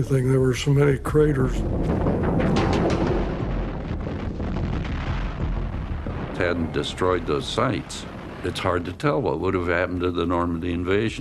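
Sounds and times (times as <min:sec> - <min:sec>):
speech: 0:00.0 - 0:02.1, 0:06.4 - 0:11.1
heavy bombing explosions from old archival film: 0:00.0 - 0:11.1
sharp blasts: 0:01.5 - 0:10.4.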